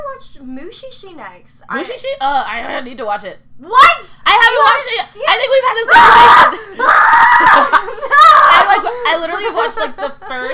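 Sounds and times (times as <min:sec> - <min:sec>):
speech: 0:00.2 - 0:10.5
person screaming: 0:05.9 - 0:08.8
laughter: 0:06.5 - 0:10.5.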